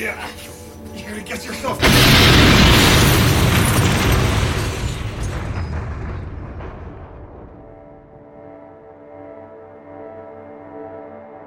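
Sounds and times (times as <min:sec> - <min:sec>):
speech: 0:01.1 - 0:02.4
loud explosion: 0:01.8 - 0:08.2.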